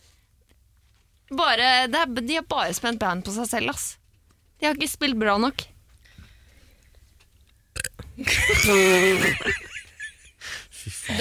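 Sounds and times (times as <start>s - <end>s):
speech: 1.3s - 4.0s, 4.6s - 5.7s, 8.2s - 9.7s
loud burp with a rough voiced rumble: 7.8s - 9.2s
laughter: 8.2s - 11.1s.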